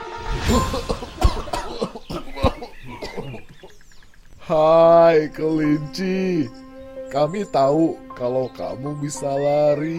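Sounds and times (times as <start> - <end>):
speech: 0.4 - 1.2, 4.5 - 9.9
three characters coughing from flying dust: 0.4 - 3.4.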